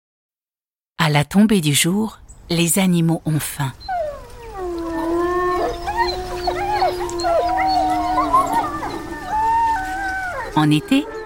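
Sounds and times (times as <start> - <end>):
speech: 1.0 - 3.9, 10.6 - 11.2
wolves howling in chorus: 3.8 - 11.2.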